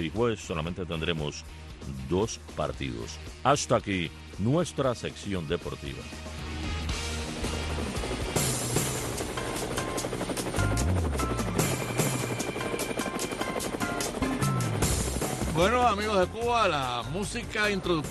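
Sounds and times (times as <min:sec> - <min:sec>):
speech: 0:00.0 - 0:06.4, 0:15.6 - 0:18.0
helicopter rotor blades chopping overhead: 0:06.9 - 0:18.0.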